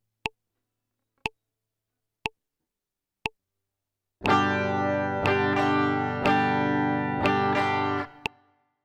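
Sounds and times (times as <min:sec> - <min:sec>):
intro melody: 0:04.2 - 0:08.4.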